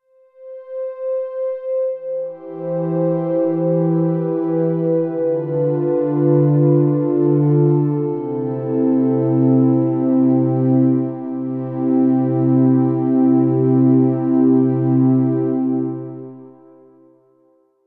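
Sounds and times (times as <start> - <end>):
synth string pad with reverb: 1.1 - 16.8.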